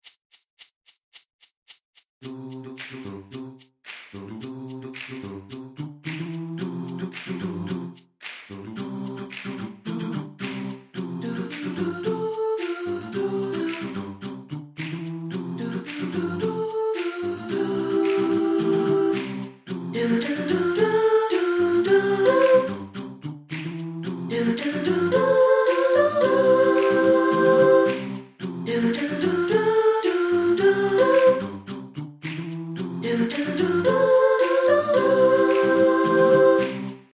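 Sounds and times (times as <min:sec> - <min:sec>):
soprano singing: 0:11.2 - 0:14.1, 0:15.5 - 0:22.9, 0:24.1 - 0:31.6, 0:33.0 - 0:36.9.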